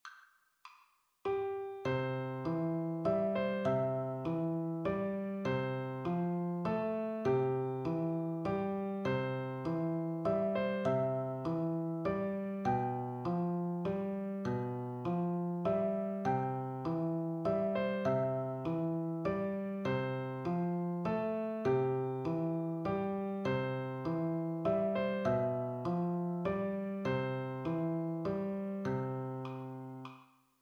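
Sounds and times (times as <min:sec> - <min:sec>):
easy solo piano: 0:01.3 - 0:30.1.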